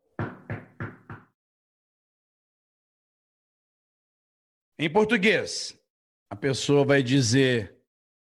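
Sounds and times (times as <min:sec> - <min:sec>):
firm knocks on a wooden door: 0:00.1 - 0:01.4
speech: 0:04.8 - 0:07.8.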